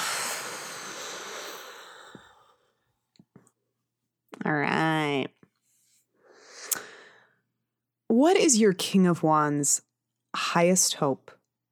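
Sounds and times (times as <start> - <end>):
deep exhale during a guided breathing exercise: 0.0 - 2.7
speech: 4.4 - 5.3, 8.2 - 11.4.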